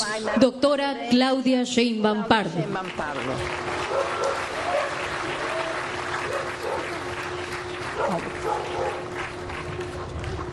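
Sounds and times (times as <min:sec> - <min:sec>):
speech: 0:00.2 - 0:04.2
steady crowd applause: 0:02.7 - 0:10.5
small dog barking and yipping: 0:03.9 - 0:05.0, 0:06.3 - 0:07.0, 0:08.0 - 0:09.1.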